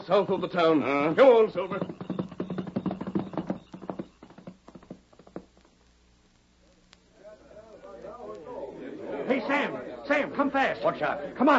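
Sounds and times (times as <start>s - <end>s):
horse hooves clip-clopping: 0.0s - 5.8s
speech: 0.1s - 2.1s, 10.4s - 11.5s.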